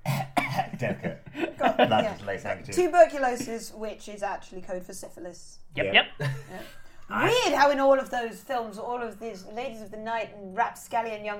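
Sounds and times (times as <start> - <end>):
consumptive-sounding coughing into a handkerchief: 0.0 - 0.8
speech: 0.8 - 11.3.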